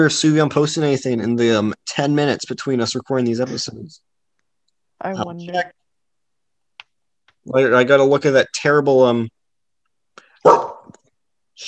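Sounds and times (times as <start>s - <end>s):
speech: 0.0s - 4.1s, 5.0s - 5.8s, 7.4s - 9.4s
pet dog barking: 10.4s - 11.0s.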